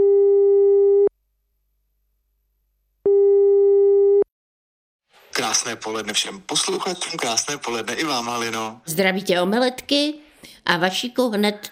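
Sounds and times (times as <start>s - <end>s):
telephone line tone while a call is placed: 0.0s - 1.1s, 3.1s - 4.2s
speech: 5.5s - 11.7s.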